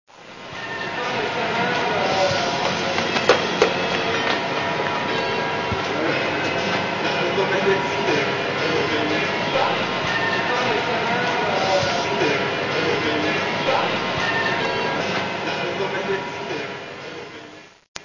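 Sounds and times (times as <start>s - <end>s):
metro platform ambience: 0.1s - 17.8s.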